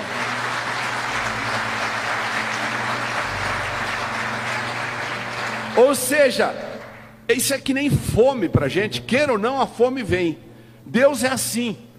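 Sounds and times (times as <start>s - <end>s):
audience applauding: 0.0s - 7.2s
speech: 5.8s - 6.7s, 7.3s - 11.9s.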